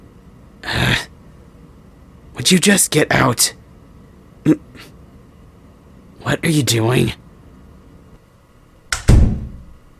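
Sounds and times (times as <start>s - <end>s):
speech: 2.4s - 3.6s, 4.4s - 4.9s, 6.2s - 7.2s
door latch click: 8.9s - 9.4s
door shutting with a heavy booming thud: 9.0s - 9.7s.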